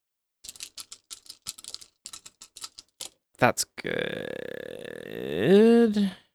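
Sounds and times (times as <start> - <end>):
plastic dice rolled on a table: 0.5 - 3.2
speech: 3.4 - 6.2.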